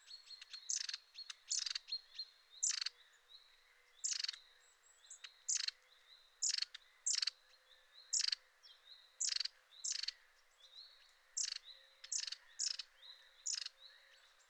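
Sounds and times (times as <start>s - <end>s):
long-tailed tit calling with rasping rattles and high thin whistled notes: 0.1s - 3.0s, 4.0s - 4.4s, 5.1s - 5.8s, 6.4s - 7.4s, 8.1s - 8.4s, 9.2s - 10.2s, 11.4s - 13.8s.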